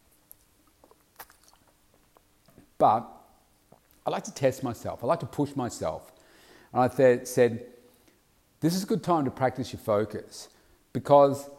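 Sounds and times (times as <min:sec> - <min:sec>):
person sipping water: 0:00.2 - 0:02.8, 0:03.6 - 0:04.0
wet mouth clicks: 0:00.2 - 0:02.8, 0:03.7 - 0:04.0
slurping swallow: 0:00.6 - 0:02.3
speech: 0:02.8 - 0:03.2, 0:04.1 - 0:07.7, 0:08.6 - 0:11.5.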